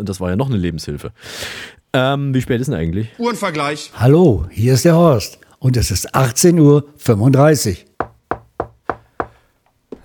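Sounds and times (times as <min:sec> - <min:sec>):
speech: 0:00.0 - 0:07.9
knocking on a door: 0:08.0 - 0:09.4.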